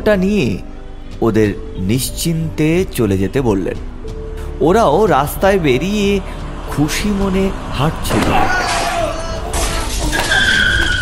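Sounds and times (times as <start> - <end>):
speech: 0.0 - 3.9, 4.6 - 8.6
car approaching from behind on a road and speeding past: 5.0 - 11.0
screeching skid-like tire squeal: 6.0 - 11.0.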